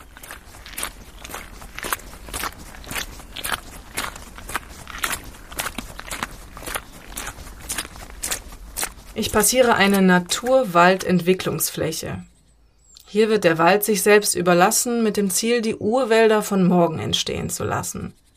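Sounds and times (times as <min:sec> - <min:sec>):
footsteps squelching on a wet muddy forest path: 0:00.0 - 0:11.6
speech: 0:09.2 - 0:12.3, 0:13.1 - 0:18.2.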